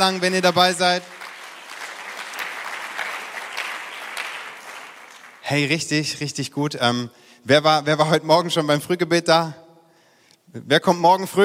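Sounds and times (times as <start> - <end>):
speech: 0.0 - 1.2, 5.5 - 9.6, 10.5 - 11.4
large audience applause: 0.0 - 6.1.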